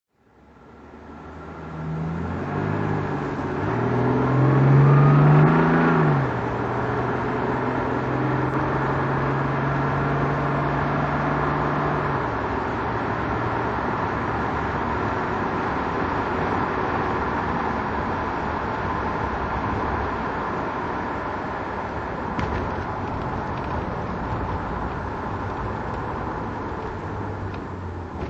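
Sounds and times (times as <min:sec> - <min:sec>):
Jaguar XJ6 4.2 automatic car engine driving: 0:00.2 - 0:28.2.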